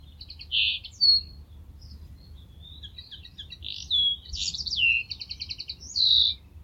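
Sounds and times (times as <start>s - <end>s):
common linnet singing: 0.0s - 6.6s.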